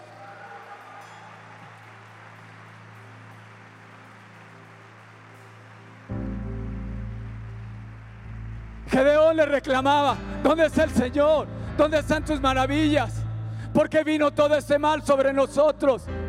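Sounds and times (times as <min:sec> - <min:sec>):
crowd applause: 0:00.0 - 0:10.2
speech: 0:09.0 - 0:13.2, 0:13.8 - 0:16.2.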